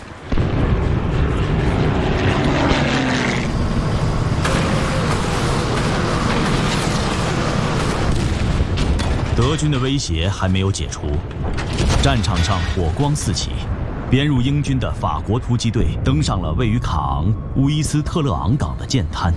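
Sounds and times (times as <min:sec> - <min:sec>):
Spitfire fighter aircraft flying over a beach landing: 0:00.0 - 0:09.4
speech: 0:09.5 - 0:19.3.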